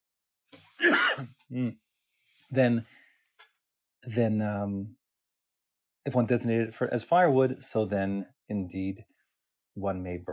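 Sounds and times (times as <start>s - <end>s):
person coughing: 0.8s - 1.7s
speech: 0.8s - 1.8s, 2.5s - 3.0s, 4.0s - 5.0s, 6.0s - 9.1s, 9.8s - 10.3s
throat clearing: 0.8s - 1.8s.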